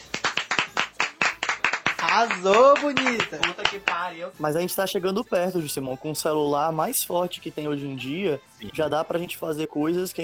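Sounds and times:
hands clapping: 0:00.0 - 0:04.1
speech: 0:02.2 - 0:10.2.

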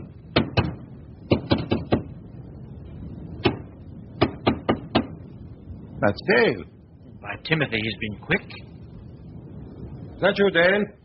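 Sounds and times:
knocking from behind wooden wall paneling between a parlor and a staircase: 0:00.4 - 0:02.1, 0:04.2 - 0:05.2
speech: 0:06.0 - 0:08.7, 0:10.2 - 0:11.0.

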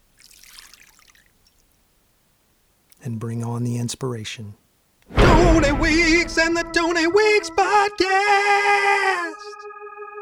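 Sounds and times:
chocolate drink being poured: 0:00.1 - 0:01.6
speech: 0:03.0 - 0:04.6, 0:05.5 - 0:09.5.

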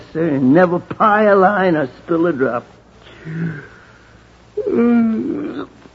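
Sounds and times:
speech: 0:00.1 - 0:03.8, 0:04.6 - 0:05.8
person yawning with a groaning moan: 0:03.2 - 0:03.8, 0:04.6 - 0:05.8
person murmuring: 0:04.6 - 0:05.7.

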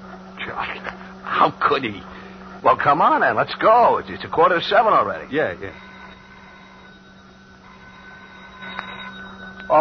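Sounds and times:
low hum: 0:00.0 - 0:09.7
speech: 0:00.5 - 0:05.9
telephone ringing with thin steady electronic tone: 0:03.8 - 0:09.7.

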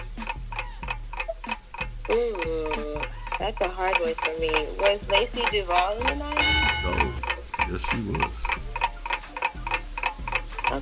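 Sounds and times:
countdown clock ticking: 0:00.0 - 0:10.8
speech: 0:03.4 - 0:08.4
low sustained tone: 0:06.4 - 0:07.3.

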